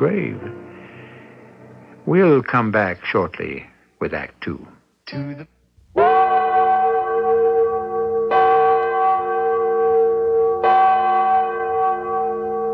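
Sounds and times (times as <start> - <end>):
speech: 0.0 - 0.6, 2.0 - 5.6
large bell tolling: 6.0 - 12.7.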